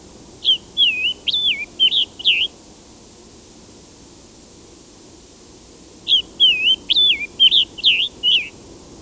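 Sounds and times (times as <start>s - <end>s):
Scarlet Tanager: 0.4s - 2.5s, 6.1s - 8.6s.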